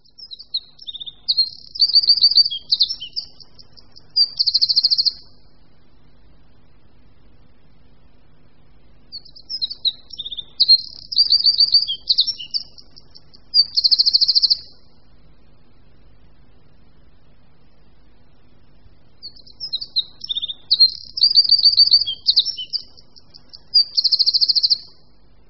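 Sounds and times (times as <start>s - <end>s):
Eurasian wren singing: 0.0s - 5.6s, 9.0s - 15.0s, 19.2s - 25.2s
faint low hum: 0.0s - 25.4s.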